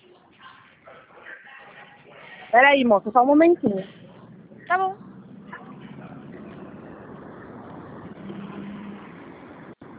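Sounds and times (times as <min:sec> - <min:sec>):
speech: 0:02.5 - 0:04.0, 0:04.7 - 0:05.0
car driving in traffic: 0:03.8 - 0:09.9.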